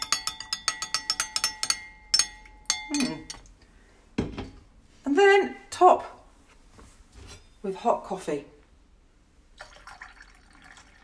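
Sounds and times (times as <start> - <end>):
spoon clinking against a cup while stirring brandy and zabaglione: 0.0 - 3.5
speech: 2.9 - 3.2, 5.3 - 6.2, 7.6 - 8.5.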